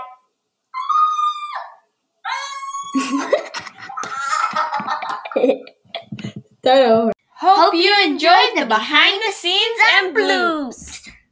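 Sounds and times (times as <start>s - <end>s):
high-pitched vocal squeals: 0.7s - 3.2s, 3.9s - 4.6s
speech: 2.9s - 3.4s, 6.7s - 10.9s
laughter: 2.9s - 6.4s.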